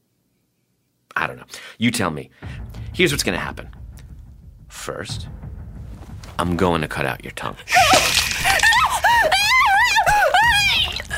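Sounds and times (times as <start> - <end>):
speech: 1.3 - 3.8, 4.8 - 5.5, 6.4 - 8.6
person screaming in terror: 7.7 - 11.1.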